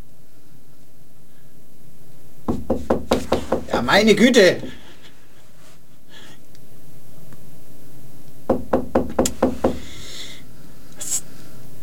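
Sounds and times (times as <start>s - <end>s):
quiet room hum: 0.0s - 11.8s
sharp knocks on a wooden door: 2.5s - 4.8s, 8.5s - 9.9s
speech: 3.8s - 4.8s.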